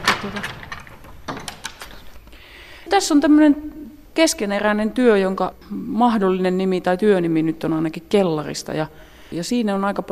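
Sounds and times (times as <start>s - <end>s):
workroom door pushed shut with soft thud: 0.0s - 2.0s
speech: 0.2s - 0.6s, 2.9s - 10.0s.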